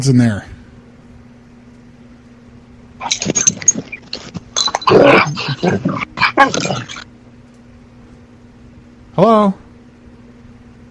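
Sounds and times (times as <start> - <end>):
speech: 0.0 - 0.6, 3.0 - 3.4, 5.0 - 7.0, 9.2 - 9.6
steady low hum: 0.6 - 10.9
dog barking and whimpering: 3.0 - 7.0.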